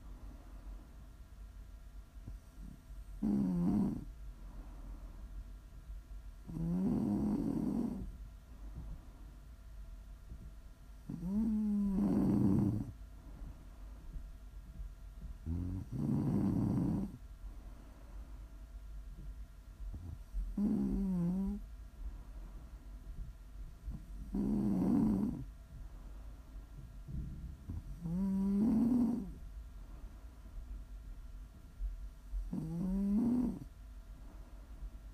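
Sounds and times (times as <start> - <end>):
quiet breathing: 0.0 - 35.1
soft constant hum: 0.0 - 35.1
heavy snoring with throaty rattle and whistling: 2.6 - 4.1, 6.5 - 8.1, 11.1 - 13.0, 15.4 - 17.2, 20.5 - 21.6, 24.2 - 25.5, 27.2 - 29.4, 32.5 - 33.7.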